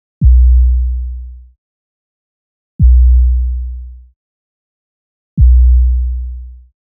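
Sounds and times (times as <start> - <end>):
hip hop 808 kick drum: 0.2 - 0.6, 2.8 - 3.2, 5.4 - 5.8.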